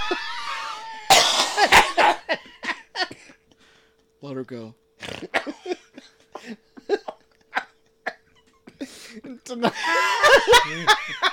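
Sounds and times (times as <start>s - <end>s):
person coughing: 1.0s - 3.3s, 5.0s - 5.7s
speech: 4.2s - 5.8s, 9.6s - 11.0s
laughter: 5.1s - 11.3s.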